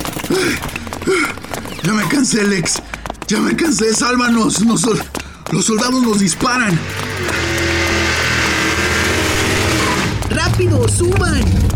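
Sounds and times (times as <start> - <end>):
speech: 0.3 - 7.4, 10.6 - 11.7
car engine roaring: 5.8 - 11.7.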